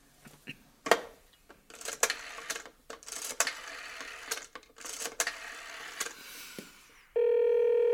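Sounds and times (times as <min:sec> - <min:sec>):
steady sustained telephone line tone: 0:07.2 - 0:07.9.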